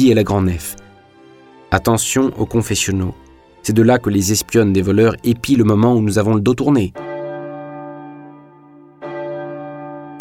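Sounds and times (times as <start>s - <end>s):
speech: 0.0s - 0.8s, 1.7s - 7.0s
large church bell ringing in full swing: 7.0s - 10.2s.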